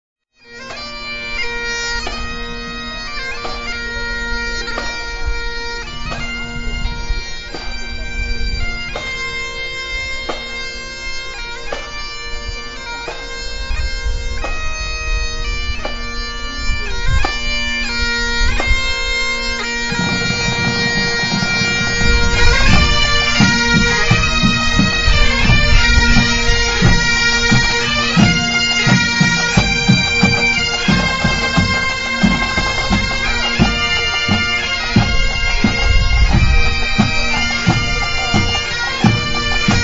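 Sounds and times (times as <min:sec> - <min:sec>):
pipes: 0:00.4 - 0:39.8
drums: 0:19.8 - 0:39.8.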